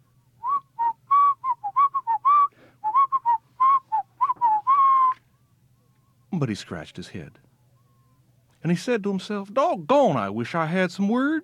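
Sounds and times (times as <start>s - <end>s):
faint low hum: 0.0s - 11.4s
person whistling a lively bouncy tune: 0.4s - 5.2s
speech: 6.4s - 7.4s, 8.6s - 11.4s.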